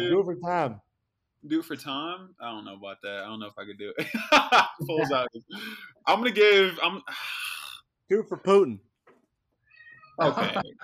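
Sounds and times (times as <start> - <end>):
speech: 0.0 - 7.4, 8.1 - 8.9, 10.2 - 10.8
laughter: 3.8 - 7.0, 10.2 - 10.8
cat meowing: 9.7 - 10.4.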